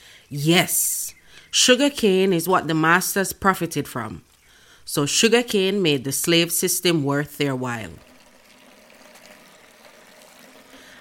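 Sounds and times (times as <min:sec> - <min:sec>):
speech: 0:00.3 - 0:04.3, 0:04.9 - 0:08.1
water pouring and splashing: 0:07.8 - 0:10.9.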